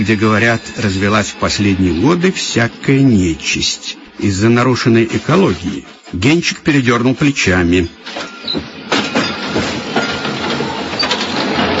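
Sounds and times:
speech: 0.0 - 8.7
old dacha-line rail carriage pulling in with rumble and clatter: 0.0 - 11.7
heavy knocks of rail carriage wheels and metal: 8.0 - 11.7.

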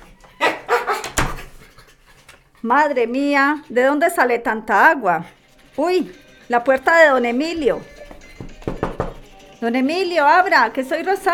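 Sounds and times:
dog barking: 0.4 - 1.6
speech: 2.6 - 8.0, 9.6 - 11.3.

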